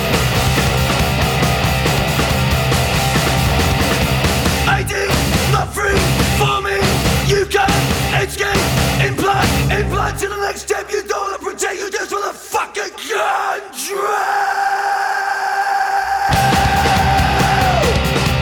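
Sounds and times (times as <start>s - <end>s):
pounding drums in an industrial metal song: 0.0s - 9.9s, 16.3s - 18.4s
dense tight distorted guitar in an industrial metal song: 0.0s - 10.3s, 16.3s - 18.4s
harsh screamed vocals in an industrial metal song: 0.0s - 18.4s.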